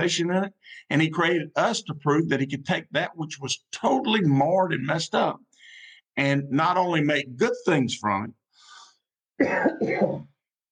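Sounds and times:
speech: 0.0 - 5.5, 6.2 - 8.4, 9.4 - 10.3
harsh coughs: 9.4 - 10.4.

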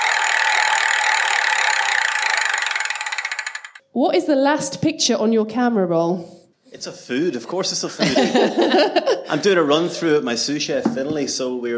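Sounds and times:
prize wheel spun at a live restaurant event: 0.0 - 3.8
speech: 4.0 - 11.7
laughter: 7.8 - 10.7.

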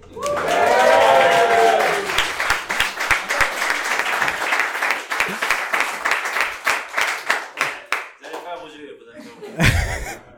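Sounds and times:
small live audience applauding in a café: 0.0 - 8.0
audience cheering voices in a café: 0.2 - 2.2
laughter: 9.2 - 10.3
person talking: 9.6 - 10.2.

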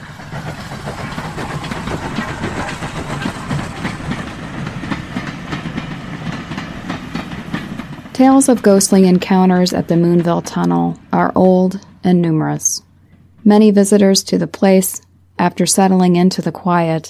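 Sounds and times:
steam locomotive wheels clattering while hauling boxcars: 0.0 - 13.8
continuous low roar of a steam locomotive: 0.0 - 16.1
speech: 8.2 - 17.0.

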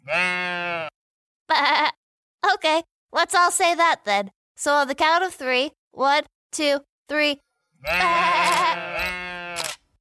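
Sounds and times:
sheep bleating: 0.0 - 1.0, 7.8 - 9.8
speech: 2.6 - 9.2.

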